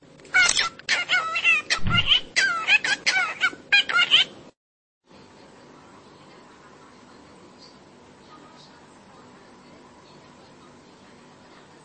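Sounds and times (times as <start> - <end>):
cockatiel chattering with warbling whistled chirps: 0.3 - 4.4.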